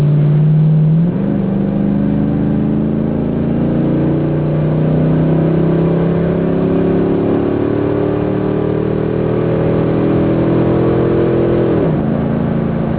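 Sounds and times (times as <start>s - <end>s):
car engine at full throttle acceleration heard from the interior: 0.0s - 12.9s.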